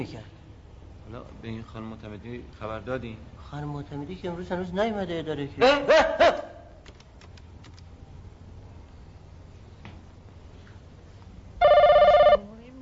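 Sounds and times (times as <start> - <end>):
speech: 0.0 - 0.3, 1.1 - 6.4
faint clicks: 6.8 - 7.9
office telephone ringing with an electronic trill: 11.6 - 12.5.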